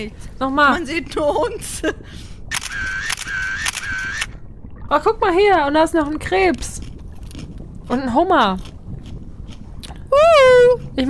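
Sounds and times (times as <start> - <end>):
speech: 0.0 - 2.3, 4.9 - 6.8, 7.9 - 8.7, 10.1 - 11.0
camera shutter firing in a burst: 2.5 - 4.3.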